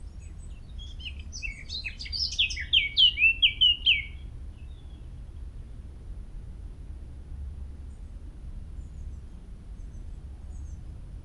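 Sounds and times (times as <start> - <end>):
Eurasian blackcap song: 0.8 - 4.2.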